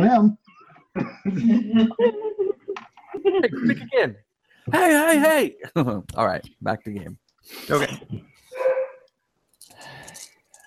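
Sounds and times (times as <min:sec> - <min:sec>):
speech: 0:00.1 - 0:00.4, 0:01.0 - 0:02.2, 0:03.4 - 0:08.3
dog barking in a video game: 0:08.5 - 0:09.1.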